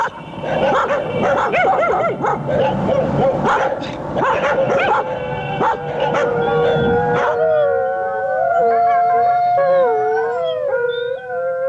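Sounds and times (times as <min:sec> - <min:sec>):
several stray dogs howling together: 0:00.5 - 0:11.6.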